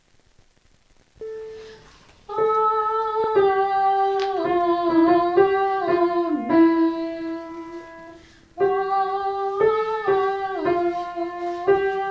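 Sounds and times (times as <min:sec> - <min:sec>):
soprano singing amen: 0:02.3 - 0:12.0.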